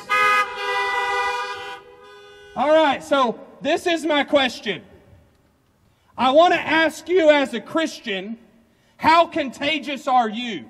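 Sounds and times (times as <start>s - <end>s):
car horns honking: 0.0s - 3.1s
speech: 2.6s - 4.9s, 6.2s - 8.4s, 9.0s - 10.6s.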